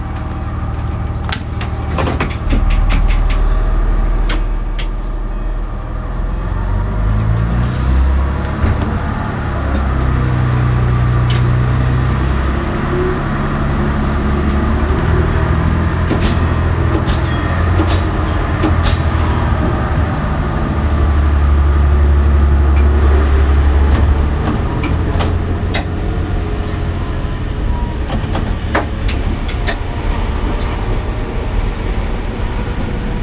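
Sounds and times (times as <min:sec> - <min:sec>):
diesel railcar engine drone: 0:00.0 - 0:33.2
diesel railcar wheel rumble: 0:00.0 - 0:33.2
clicks and clatters from the railway track: 0:00.1 - 0:05.4, 0:14.5 - 0:19.9, 0:22.6 - 0:26.0, 0:28.0 - 0:30.8.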